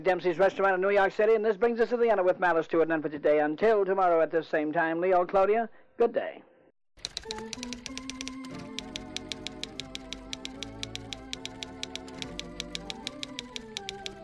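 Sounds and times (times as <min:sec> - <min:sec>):
speech: 0:00.0 - 0:06.5, 0:07.2 - 0:07.7
typewriter typing: 0:07.0 - 0:14.2.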